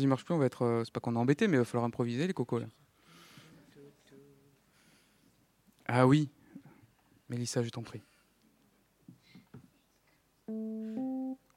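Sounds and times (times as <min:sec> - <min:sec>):
speech: 0:00.0 - 0:02.9, 0:05.9 - 0:06.4, 0:07.3 - 0:08.1, 0:10.5 - 0:11.5
keyboard playing a theme tune live: 0:10.5 - 0:11.5.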